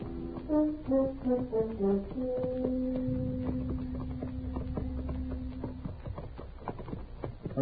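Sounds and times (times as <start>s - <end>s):
music playing: 0.0s - 5.8s
horses' hooves clip-clopping at a walking pace along a street: 0.0s - 7.6s
speech: 0.6s - 3.2s.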